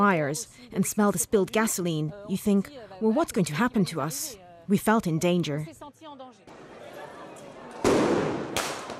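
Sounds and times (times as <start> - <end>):
speech: 0.0 - 6.7
firework mortar blasts hurled at riot police in Bordeaux France: 7.8 - 8.9.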